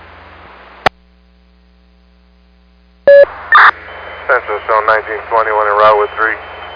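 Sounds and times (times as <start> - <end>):
low radio hum: 0.0 - 6.7
electronic fire department paging tones: 3.1 - 3.8
speech: 4.3 - 6.5.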